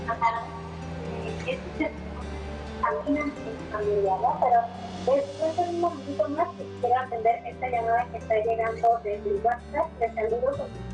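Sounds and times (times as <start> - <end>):
speech: 0.1 - 0.6, 2.9 - 10.9
loud television playing in the background of a phone call: 0.1 - 10.6.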